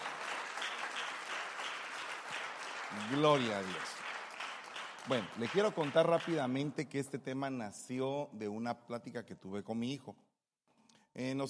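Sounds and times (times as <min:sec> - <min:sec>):
congregation applauding: 0:00.0 - 0:06.8
speech: 0:02.9 - 0:04.0, 0:05.0 - 0:10.2, 0:11.2 - 0:11.4.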